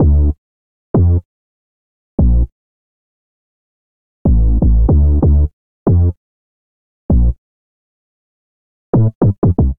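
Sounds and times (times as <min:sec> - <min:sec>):
sub bass line in D minor: 0:00.0 - 0:00.4, 0:01.0 - 0:01.2, 0:02.2 - 0:02.5, 0:04.3 - 0:06.2, 0:07.1 - 0:07.4, 0:09.0 - 0:09.7.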